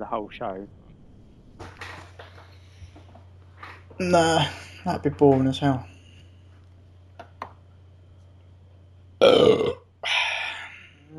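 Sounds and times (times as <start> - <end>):
speech: 0.0 - 0.8, 4.0 - 5.9
loud burps: 9.2 - 9.8.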